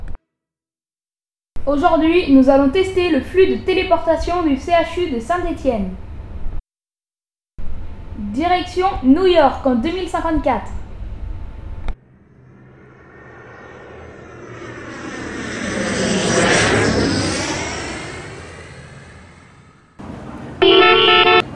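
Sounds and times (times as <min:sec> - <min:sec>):
speech: 0:01.6 - 0:06.0, 0:08.3 - 0:10.8
futuristic flying car engine roaring past overhead: 0:11.9 - 0:21.5
car horn honking: 0:20.6 - 0:21.5.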